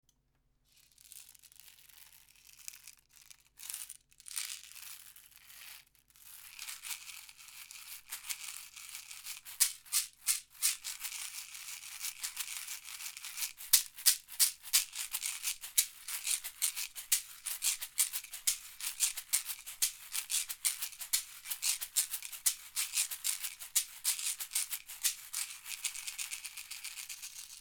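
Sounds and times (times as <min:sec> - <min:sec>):
small caxixi shaker: 0:06.4 - 0:27.5.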